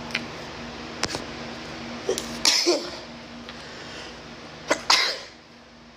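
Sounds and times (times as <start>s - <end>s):
low steady hum: 0.0s - 5.9s
person sneezing: 2.1s - 3.1s, 4.7s - 5.4s.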